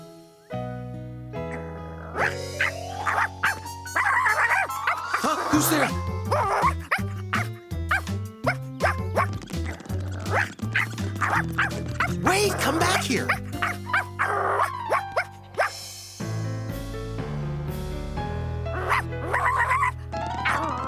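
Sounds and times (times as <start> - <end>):
music: 0.0 - 20.8
dog barking and yipping: 1.5 - 15.8, 18.7 - 20.8
speech: 5.6 - 6.1, 11.6 - 13.4.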